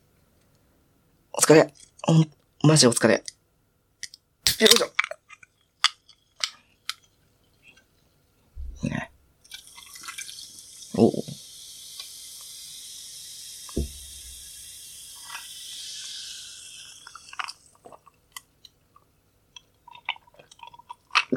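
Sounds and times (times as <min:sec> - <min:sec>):
faint steady hiss: 0:00.0 - 0:21.3
speech: 0:01.5 - 0:03.3, 0:04.6 - 0:05.0
chewing and eating food: 0:17.3 - 0:21.3.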